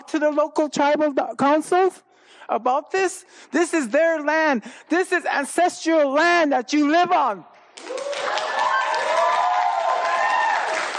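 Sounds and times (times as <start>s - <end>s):
speech: 0.1s - 8.0s
audience clapping for a woman speaker: 7.7s - 10.9s.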